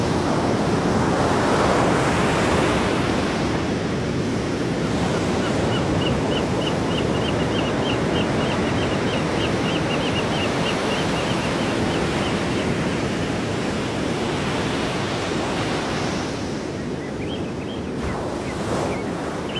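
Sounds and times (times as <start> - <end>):
Pacific surf roaring: 0.1 - 19.5
songbird trilling: 5.4 - 12.8, 16.8 - 19.5.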